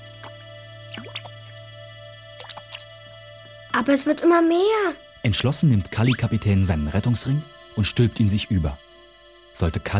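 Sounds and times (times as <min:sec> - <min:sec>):
water scooped out of a boat splashing and dripping: 0:00.1 - 0:01.4, 0:02.4 - 0:02.9
speech: 0:03.8 - 0:08.9, 0:09.6 - 0:09.9.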